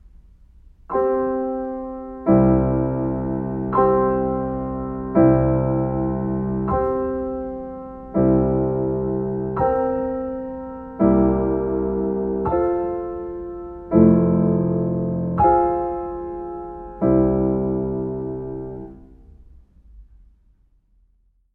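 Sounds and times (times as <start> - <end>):
live piano accompaniment: 0.7 - 19.6.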